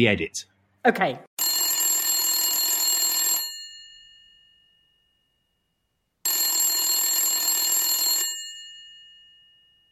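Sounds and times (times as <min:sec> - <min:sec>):
speech: 0:00.0 - 0:01.3
telephone ringing: 0:01.4 - 0:05.5, 0:06.2 - 0:09.9.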